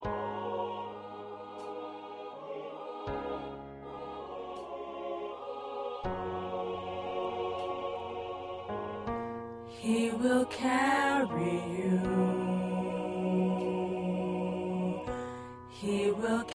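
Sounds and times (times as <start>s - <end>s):
choir tenors singing: 0.0s - 16.5s.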